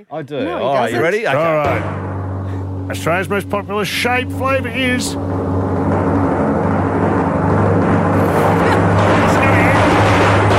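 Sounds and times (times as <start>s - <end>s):
speech: 0.0s - 2.1s, 2.9s - 5.5s
continuous drum roll sound effect: 1.5s - 10.5s.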